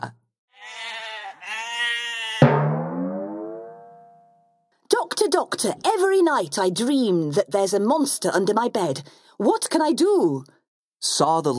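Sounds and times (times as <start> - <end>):
sheep bleating: 0.5 - 2.4
speech: 5.3 - 11.5.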